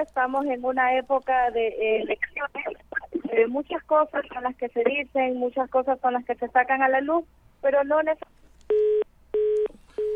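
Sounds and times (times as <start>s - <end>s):
speech: 0.0s - 8.9s
telephone line tone beeps after a dropped call: 8.7s - 10.1s.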